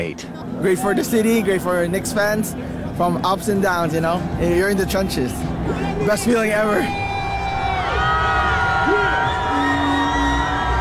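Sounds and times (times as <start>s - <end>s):
speech: 0.0s - 7.0s
large outdoor parade crowd cheering and whooping: 5.6s - 10.7s.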